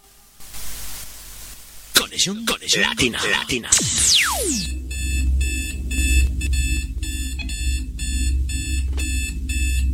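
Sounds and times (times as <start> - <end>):
speech: 2.1 - 4.8
quick downward sweep: 3.5 - 4.8
electronic alarm clock beeping: 4.0 - 9.9.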